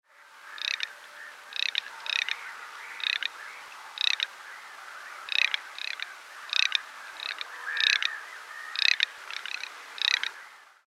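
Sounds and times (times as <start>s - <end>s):
garganey calling: 0.5s - 0.9s, 1.5s - 3.4s, 4.0s - 4.3s, 5.3s - 10.4s.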